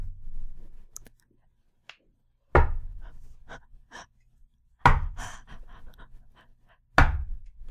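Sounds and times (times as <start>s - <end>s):
heavy hollow knocks on drywall walls of a small built set: 2.6s - 2.9s.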